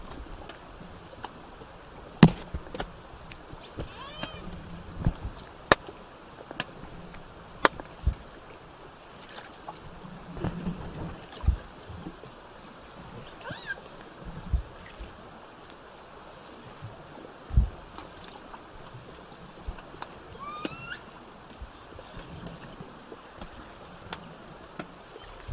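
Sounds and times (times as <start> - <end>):
underwater noise: 0.0 - 25.5
Southern Resident killer whale upsweeping whistles: 13.2 - 13.8, 20.3 - 21.1.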